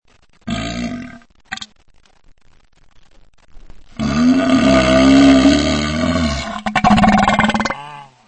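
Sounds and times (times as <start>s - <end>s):
diarrhea fart: 0.4s - 1.7s, 4.0s - 8.0s.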